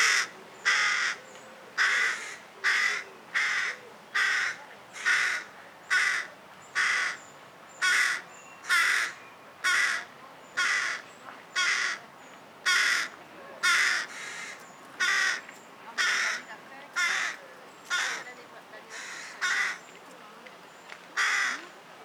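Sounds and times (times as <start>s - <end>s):
carrion crow Corvus corone cawing: 0.0s - 1.2s, 1.8s - 7.2s, 7.8s - 11.0s, 11.6s - 12.0s, 12.7s - 15.4s, 16.0s - 18.3s, 18.9s - 19.8s, 21.2s - 21.7s.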